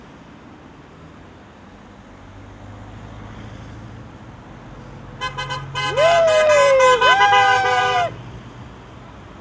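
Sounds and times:
car horns honking at a street protest against a reform: 0:05.2 - 0:08.2.

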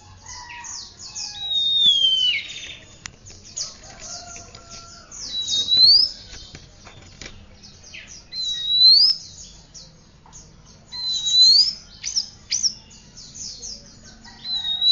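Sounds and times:
Oriental magpie-robin whistling and singing: 0:00.7 - 0:03.0, 0:03.6 - 0:07.1, 0:07.9 - 0:09.6, 0:10.9 - 0:13.8, 0:14.4 - 0:14.9.

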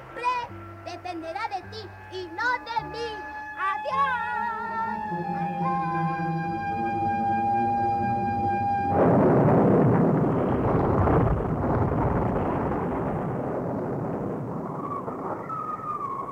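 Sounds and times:
speech: 0:00.9 - 0:06.7
sustained harmonic musical tone: 0:01.6 - 0:09.4
thunder in a night storm at sea: 0:08.8 - 0:16.3
roar of huge waves in a night storm at sea: 0:08.9 - 0:16.3.

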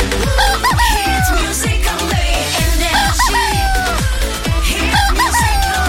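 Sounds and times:
laughter: 0:00.2 - 0:02.0, 0:02.5 - 0:05.8
agitated rooster crowing loudly: 0:00.3 - 0:01.5, 0:02.9 - 0:04.0, 0:04.7 - 0:05.8.

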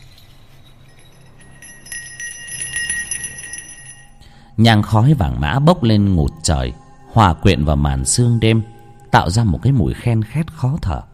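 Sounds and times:
small ritual hand bell shaken gently during a chanting ceremony in a courtyard: 0:00.0 - 0:04.3
speech: 0:04.6 - 0:11.1.

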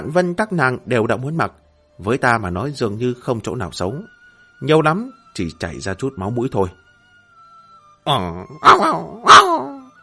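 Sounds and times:
speech: 0:00.0 - 0:06.8, 0:08.0 - 0:09.7
dog whimpering: 0:08.6 - 0:10.0.

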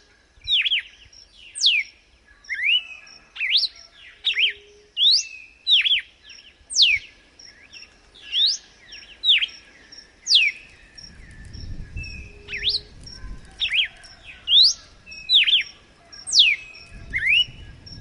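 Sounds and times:
female red-cowled cardinal singing in nature: 0:00.4 - 0:17.9.

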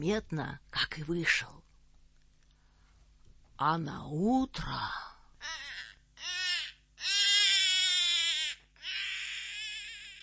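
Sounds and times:
speech: 0:00.0 - 0:01.6, 0:03.6 - 0:05.1
baby crying in a dungeon: 0:05.4 - 0:10.2.

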